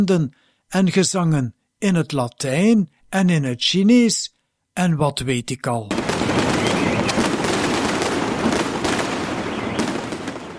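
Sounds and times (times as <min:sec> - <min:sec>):
speech: 0:00.0 - 0:06.0
long string of Chinese firecrackers exploding at a church after high mass: 0:05.9 - 0:10.5.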